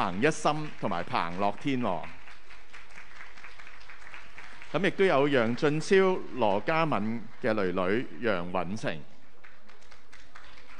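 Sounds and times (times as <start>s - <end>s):
speech: 0.0s - 2.2s, 4.7s - 9.1s
audience applause at a church child dedication ceremony: 0.0s - 8.1s, 9.4s - 10.7s.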